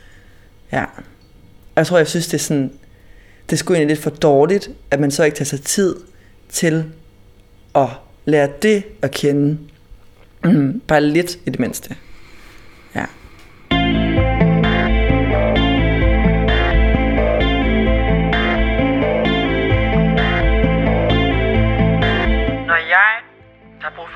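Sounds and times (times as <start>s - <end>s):
speech: 0.7s - 1.2s, 1.8s - 2.9s, 3.5s - 7.0s, 7.7s - 9.7s, 10.4s - 12.1s, 12.9s - 13.2s
loud music track with effects-heavy distorted guitar: 13.7s - 24.1s.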